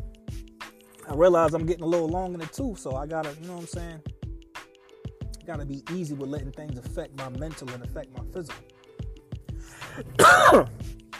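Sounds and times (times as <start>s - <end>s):
speech: 1.1s - 4.1s, 5.5s - 8.7s, 10.0s - 11.0s
low throat clearing: 9.9s - 10.8s
raspy cough: 9.9s - 10.9s.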